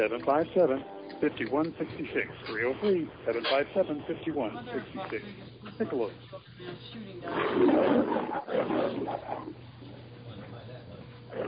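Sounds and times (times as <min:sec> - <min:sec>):
speech: 0:00.0 - 0:09.8
low steady hum: 0:00.0 - 0:11.4
lion roaring: 0:07.2 - 0:09.6, 0:11.3 - 0:11.4.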